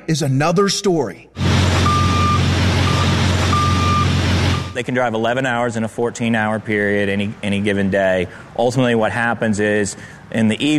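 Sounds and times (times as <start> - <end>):
speech: 0.1 - 1.5, 4.8 - 10.7
70-foot truck rig high steady reversing beeps: 1.4 - 4.8.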